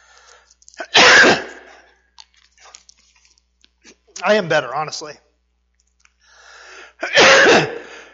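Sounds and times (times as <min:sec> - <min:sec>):
harsh coughing: 0:00.8 - 0:01.8, 0:07.0 - 0:08.1
speech: 0:04.2 - 0:05.2.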